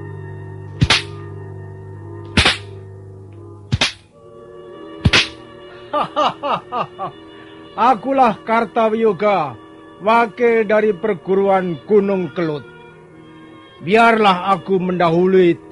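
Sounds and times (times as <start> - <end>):
whip cracking: 0.8 - 1.2, 2.4 - 2.8, 3.7 - 4.1, 5.0 - 5.4
laughter: 5.8 - 7.2
speech: 5.9 - 12.7, 13.8 - 15.7.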